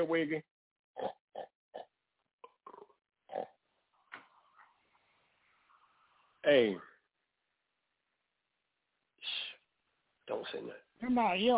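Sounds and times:
speech: 0.0s - 1.2s, 6.4s - 6.9s, 10.3s - 11.5s
pig grunting and oinking: 1.0s - 3.5s.

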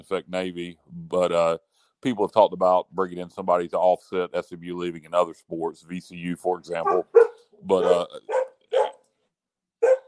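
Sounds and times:
speech: 0.1s - 8.4s
dog barking: 6.8s - 9.0s, 9.8s - 10.0s.

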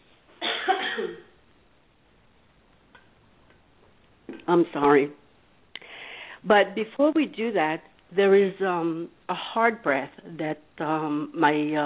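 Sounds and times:
person coughing: 0.4s - 1.3s
speech: 1.0s - 1.3s, 4.3s - 5.2s, 6.4s - 11.8s.

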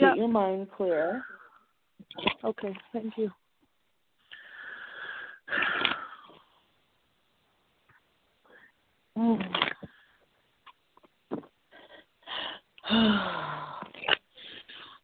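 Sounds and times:
speech: 0.2s - 1.4s, 2.0s - 3.4s, 5.5s - 5.9s, 9.2s - 9.8s, 12.9s - 13.7s
heavy breathy inhales and exhales with a wheezy strained edge: 4.2s - 6.8s, 11.7s - 15.0s.

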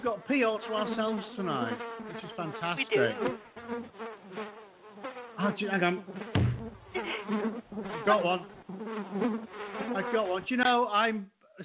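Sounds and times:
speech: 0.0s - 4.6s, 5.4s - 6.4s, 7.3s - 11.6s
fruit fly buzzing near the microphone: 0.0s - 10.3s.

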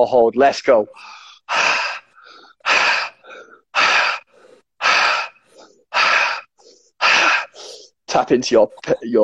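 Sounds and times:
speech: 0.0s - 1.2s, 8.2s - 9.2s
rapid breathwork breaths: 0.9s - 8.0s.

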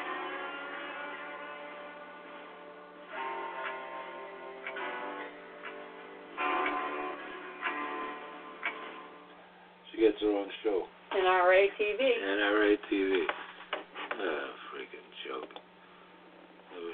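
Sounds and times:
clock ticking: 3.2s - 9.0s
speech: 10.0s - 13.4s, 14.2s - 14.6s.

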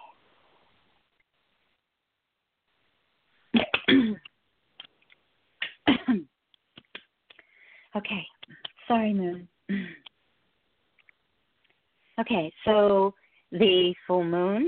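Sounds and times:
person clearing their throat: 3.6s - 4.3s, 5.6s - 6.3s
person coughing: 3.6s - 4.3s, 5.6s - 6.3s, 9.7s - 10.1s
speech: 8.0s - 9.8s, 12.2s - 14.6s.

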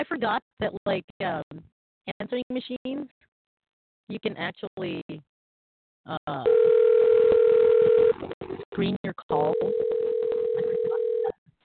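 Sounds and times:
speech: 0.0s - 3.3s, 4.1s - 5.3s, 6.0s - 6.7s, 8.4s - 10.7s
telephone dial tone during a redial after a hang-up: 6.5s - 8.2s, 9.5s - 11.3s.

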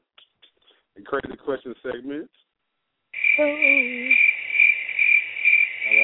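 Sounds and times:
speech: 1.1s - 2.5s, 3.4s - 4.3s
crickets chirping: 3.1s - 6.0s
low hooting call: 5.9s - 6.0s.

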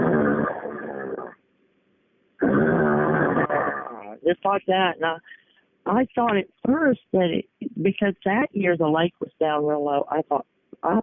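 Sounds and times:
voice imitating a consistent growling from river cane: 0.0s - 1.4s, 2.4s - 4.2s
speech: 4.2s - 11.0s.

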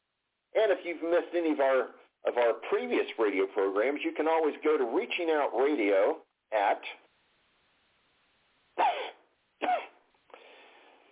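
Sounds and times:
speech: 0.6s - 7.0s
harsh coughs: 8.8s - 10.0s
softer rasping throat clearing: 8.8s - 10.0s.

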